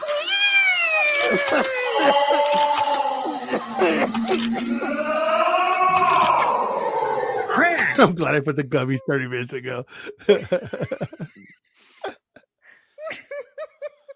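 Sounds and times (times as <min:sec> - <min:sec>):
several kittens meowing: 0:00.0 - 0:07.7
laughter: 0:01.0 - 0:06.3, 0:09.9 - 0:12.2
speech: 0:01.3 - 0:05.5, 0:08.0 - 0:11.2.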